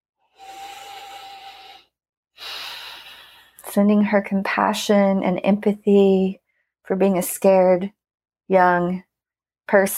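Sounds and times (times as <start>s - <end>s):
deep breath during a guided self-acceptance exercise: 0.3s - 3.6s
speech: 3.7s - 9.1s, 9.7s - 9.9s.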